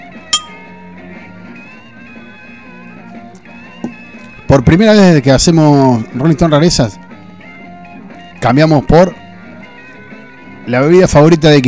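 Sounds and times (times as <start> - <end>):
soft steady music: 0.0 - 11.6
glasses clinking in a toast: 0.4 - 0.7
speech: 3.8 - 7.0, 8.4 - 9.2, 10.7 - 11.6.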